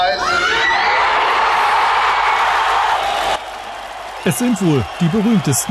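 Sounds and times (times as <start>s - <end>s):
crowd of hundreds of refugees roaring and cheering: 0.1s - 5.7s
speech: 4.3s - 5.7s.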